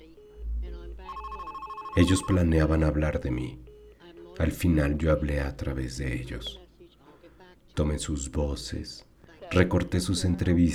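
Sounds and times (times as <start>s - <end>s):
telephone ringing on an answering machine: 0.0s - 4.6s
speech: 2.0s - 3.7s, 4.4s - 6.6s, 7.8s - 10.7s.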